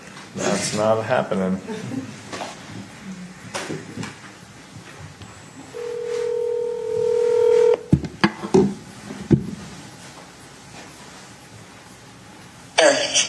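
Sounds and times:
faint room noise: 0.0s - 13.2s
speech: 0.4s - 2.2s
telephone dial tone: 5.7s - 7.9s.

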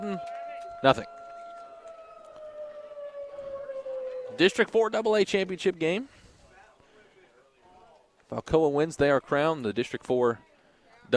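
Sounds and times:
speech: 0.0s - 1.2s, 4.4s - 6.2s, 8.3s - 10.5s
tornado siren blaring during a district championship game: 0.0s - 5.7s.

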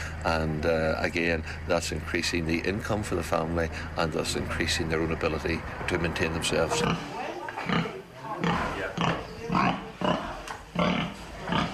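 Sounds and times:
speech: 0.2s - 9.7s
pigs grunting and snorting at a pig cooperative: 6.6s - 11.7s.

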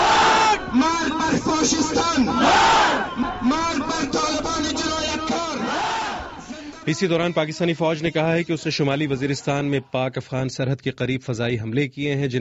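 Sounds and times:
constant roar of protest crowd noise in Kabul: 0.0s - 0.8s, 1.8s - 3.6s, 4.5s - 6.7s
protest crowd chanting anti-Taliban slogans in Kabul: 0.0s - 3.6s, 5.2s - 6.5s
speech: 6.9s - 12.3s.

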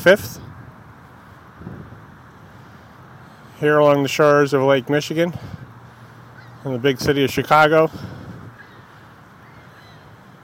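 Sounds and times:
speech: 0.0s - 0.4s, 3.6s - 5.6s, 6.6s - 8.2s
outdoor noise in Grant Park on the shore of Lake Michigan: 0.0s - 10.4s
faint seagull calls by a water fountain on the shore of Lake Michigan at sunrise: 6.3s - 6.6s, 8.5s - 10.3s.

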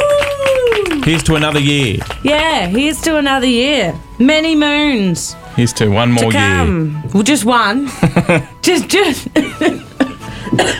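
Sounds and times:
speech: 1.1s - 9.8s, 10.6s - 10.7s
coughing fit with harsh rapid coughs: 9.3s - 10.7s.

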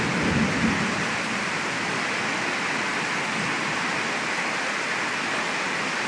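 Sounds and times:
faint low thunder rumble: 0.0s - 2.1s
heavy rain pouring down: 0.0s - 6.0s.

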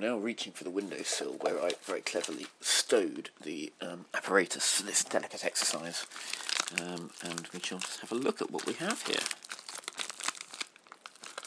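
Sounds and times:
speech: 0.0s - 9.5s
long piece of paper crinkling as it is unfolded: 0.8s - 2.6s, 5.0s - 11.4s.

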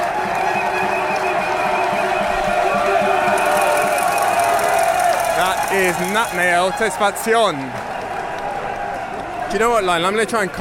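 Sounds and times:
dense roadside crowd roaring and cheering at a cycling race: 0.0s - 10.5s
speech: 5.8s - 7.9s, 9.5s - 10.5s.

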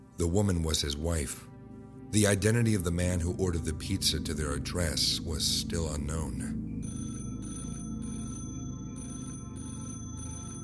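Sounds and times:
speech: 0.2s - 1.5s, 2.1s - 7.0s
telephone ringing with an electronic tone: 6.8s - 10.6s.

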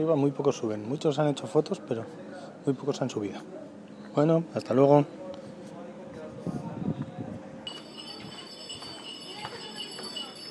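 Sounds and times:
speech: 0.0s - 5.2s
voices: 0.0s - 10.4s
donkey hooves clopping softly: 7.7s - 10.4s
donkeys' little bells jingling: 7.7s - 10.4s.

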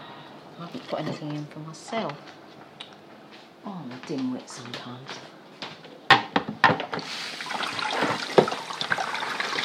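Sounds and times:
speech: 0.9s - 2.4s, 3.6s - 5.4s
tap water running to wash cabbage in a home kitchen: 6.9s - 9.6s.

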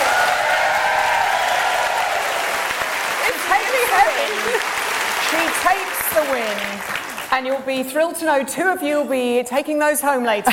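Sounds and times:
audience applause at a live show's basket contest: 0.0s - 7.6s
speech: 4.2s - 10.5s.

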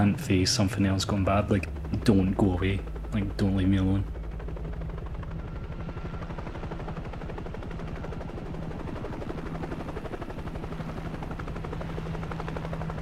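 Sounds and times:
speech: 0.0s - 4.2s
helicopter rotor blades thudding while hovering over the sea: 0.0s - 13.0s.

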